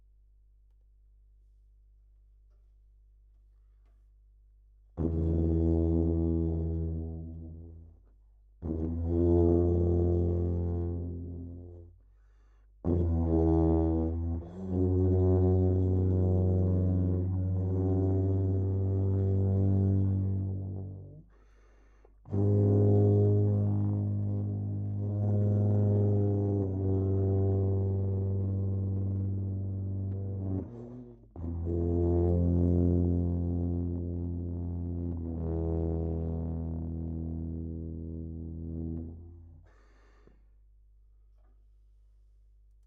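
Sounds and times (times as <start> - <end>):
trombone: 5.0 - 7.9, 8.6 - 11.9, 12.8 - 21.2, 22.3 - 39.4.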